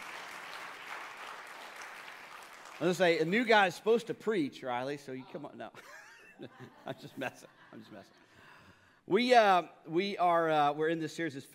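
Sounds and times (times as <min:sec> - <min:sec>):
church audience applauding a new preacher: 0:00.0 - 0:03.3
speech: 0:02.8 - 0:08.2, 0:09.1 - 0:11.5
laughter: 0:05.8 - 0:08.4.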